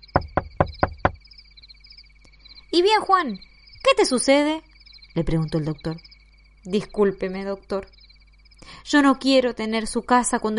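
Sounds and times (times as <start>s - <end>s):
faint high-pitched chirping of insects or birds: 0.0s - 10.5s
firm knocking on a wooden door: 0.1s - 1.2s
speech: 2.8s - 8.0s, 8.9s - 10.5s.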